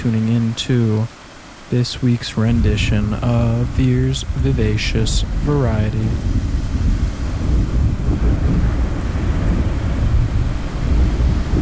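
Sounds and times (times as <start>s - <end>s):
speech: 0.0s - 6.5s
rain: 0.0s - 11.5s
wind: 0.0s - 11.5s
deep continuous thunder rolling: 2.4s - 11.5s.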